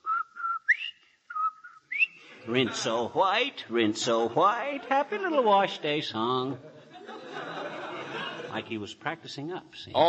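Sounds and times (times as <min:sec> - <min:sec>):
person whistling a short bright tune: 0:00.0 - 0:02.2
laughter: 0:02.2 - 0:08.8
speech: 0:02.4 - 0:06.8, 0:08.5 - 0:10.0.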